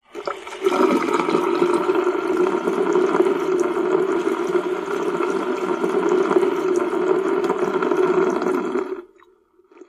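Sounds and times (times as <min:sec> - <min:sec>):
sink water running slowly: 0:00.0 - 0:09.8.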